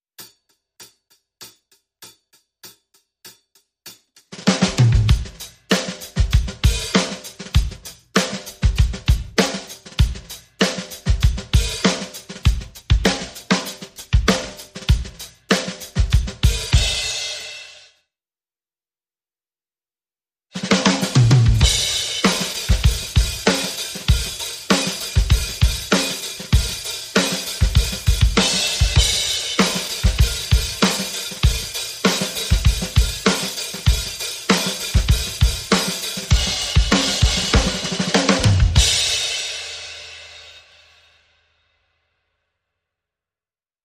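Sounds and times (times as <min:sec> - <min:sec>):
drums playing: 0:04.3 - 0:17.8, 0:20.6 - 0:40.6.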